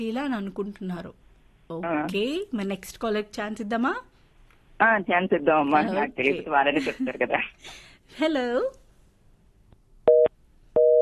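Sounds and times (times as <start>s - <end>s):
speech: 0.0s - 4.1s, 4.8s - 8.8s
telephone busy tone after a call disconnects: 10.1s - 10.9s.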